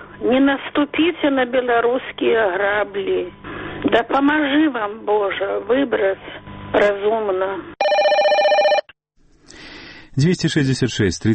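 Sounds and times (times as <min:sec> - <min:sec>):
speech: 0:00.2 - 0:07.7, 0:10.2 - 0:11.3
loud telephone bell ringing: 0:07.8 - 0:08.9.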